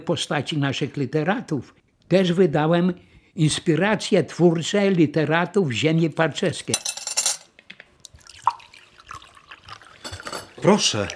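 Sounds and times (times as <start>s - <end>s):
speech: 0.0s - 7.0s, 10.6s - 11.1s
still water pouring into a glass: 8.0s - 11.1s
glass clinking: 8.5s - 10.9s.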